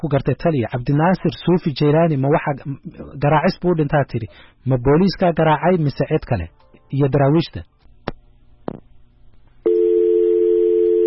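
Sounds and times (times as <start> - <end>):
speech: 0.0 - 7.7
telephone tone on an unanswered call: 9.6 - 11.0.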